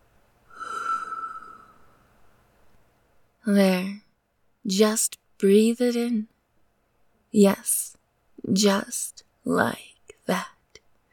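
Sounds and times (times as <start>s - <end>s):
person blowing a puff of air to send pollen from blossoms drifting: 0.5s - 1.9s
speech: 3.5s - 4.0s, 4.7s - 6.3s, 7.3s - 10.6s.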